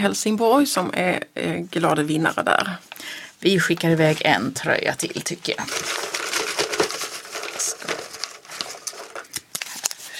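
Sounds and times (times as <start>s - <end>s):
speech: 0.0s - 6.0s
paper rustling as someone leafs through a pile of numbered entries: 3.7s - 4.5s, 5.1s - 10.1s.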